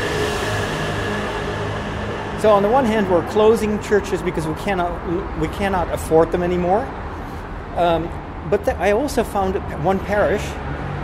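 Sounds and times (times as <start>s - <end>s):
train noise reverberating through a tunnel underneath train tracks: 0.0s - 6.0s
speech: 2.4s - 7.0s, 7.8s - 10.7s.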